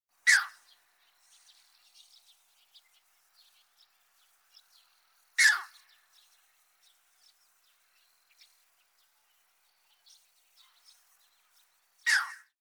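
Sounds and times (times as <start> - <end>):
striated heron giving short harsh calls: 0.2 - 0.9, 5.4 - 6.0, 12.0 - 12.5.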